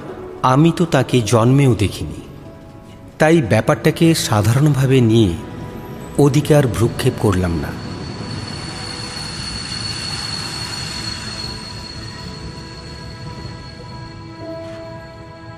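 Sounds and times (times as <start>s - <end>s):
speech: 0.4s - 2.3s, 3.2s - 5.5s, 6.2s - 7.9s
train running on rails: 4.2s - 15.5s
high train wheel squeals: 5.4s - 15.5s.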